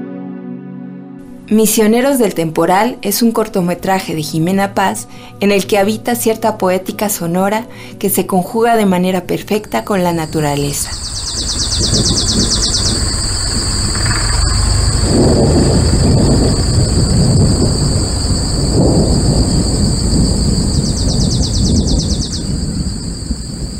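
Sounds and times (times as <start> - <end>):
speech: 1.5 - 11.6
steady high insect chorus trilling: 9.5 - 23.7
heavy thunder rumbling during a stormy night: 9.6 - 23.7.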